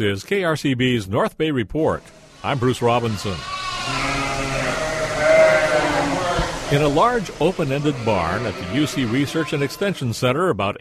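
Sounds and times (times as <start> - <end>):
speech: 0.0 - 4.1, 6.7 - 10.7
steady hum: 2.0 - 10.2
sheep bleating in a large open-ended barn at shearing time: 2.3 - 10.2.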